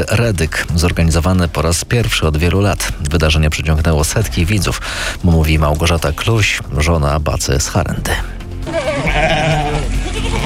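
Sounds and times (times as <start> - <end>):
speech: 0.0 - 9.2
several hundred sheep bleating in a street during a traditional flock drive: 8.6 - 10.4.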